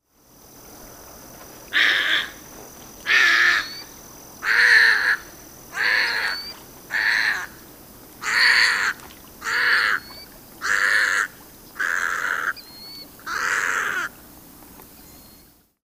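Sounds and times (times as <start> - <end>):
Egretta caerulea blue heron: 1.7 - 2.4, 3.0 - 7.6, 8.2 - 14.2.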